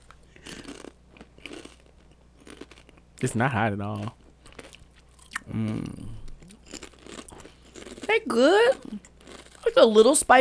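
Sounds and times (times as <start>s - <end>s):
Doritos Flamin' Hot Nacho chips being crunched and chewed: 0.0s - 3.0s, 4.0s - 5.8s, 6.4s - 8.1s, 9.0s - 9.8s
speech: 3.2s - 4.2s, 5.5s - 6.2s, 8.2s - 10.4s.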